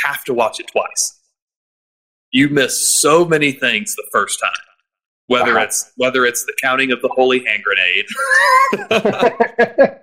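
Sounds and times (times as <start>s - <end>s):
speech: 0.0s - 1.2s, 2.3s - 4.7s, 5.3s - 10.0s
human voice imitating a yowling cat being beaten against a wall: 5.3s - 5.8s
laughter: 5.3s - 5.8s, 8.1s - 10.0s.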